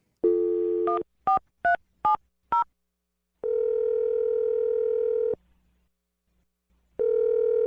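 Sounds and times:
telephone dial tone: 0:00.2 - 0:01.0, 0:03.4 - 0:05.4, 0:07.0 - 0:07.6.

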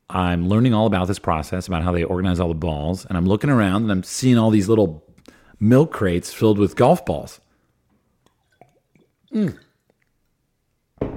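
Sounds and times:
speech: 0:00.1 - 0:07.4, 0:09.3 - 0:09.6
sipping water: 0:05.2 - 0:10.9
gulping slurp of water: 0:08.3 - 0:10.3.

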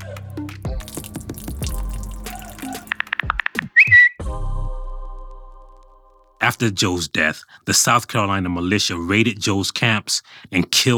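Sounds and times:
liquid pouring out in glugging splashes: 0:00.7 - 0:03.6
dripping: 0:00.7 - 0:03.7
high whistle: 0:03.7 - 0:04.2
speech: 0:06.5 - 0:10.9.

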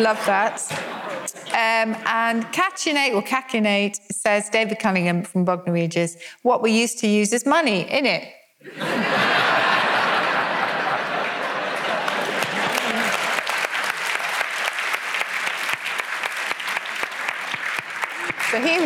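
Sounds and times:
speech: 0:00.0 - 0:00.9, 0:01.5 - 0:09.4, 0:18.5 - 0:18.8
laughter: 0:00.0 - 0:01.6, 0:08.6 - 0:13.5
crowd clapping loudly and steadily: 0:08.8 - 0:18.8.

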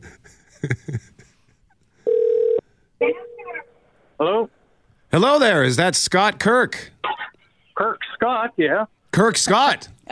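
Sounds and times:
speech: 0:00.6 - 0:01.1, 0:05.2 - 0:06.9, 0:08.5 - 0:10.1
outgoing telephone call ringback tones: 0:02.1 - 0:02.6.

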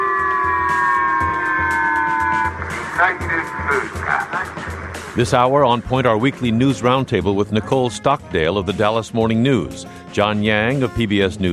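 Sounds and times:
public missile warning siren steady electronic tone on Hokkaido island: 0:00.0 - 0:03.7
loudspeaker voice announcing: 0:01.2 - 0:11.5
speech: 0:03.0 - 0:11.5.

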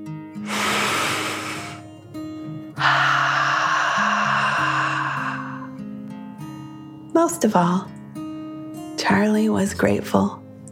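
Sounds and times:
soft sustained music: 0:00.0 - 0:10.7
deep breath in and out: 0:00.4 - 0:01.9, 0:02.7 - 0:05.9
speech: 0:07.3 - 0:07.9, 0:09.1 - 0:10.4.

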